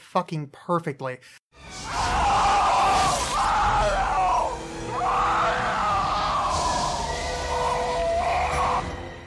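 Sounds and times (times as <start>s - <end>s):
speech: 0.1s - 1.4s
movie alien creature screaming as it goes through a window: 1.7s - 9.2s.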